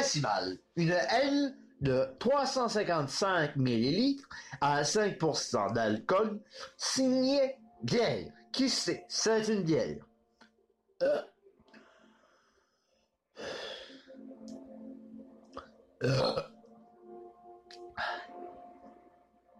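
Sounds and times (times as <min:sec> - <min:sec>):
speech: 0:00.1 - 0:10.1, 0:11.0 - 0:11.3, 0:16.0 - 0:16.5
person burping after drinking beer: 0:11.0 - 0:11.3, 0:16.0 - 0:16.5.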